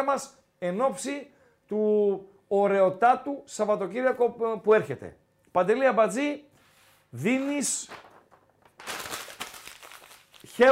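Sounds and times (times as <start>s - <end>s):
speech: 0.0s - 6.5s, 7.1s - 8.1s, 10.6s - 10.7s
paper sheets crumpling and shuffling: 7.4s - 10.7s.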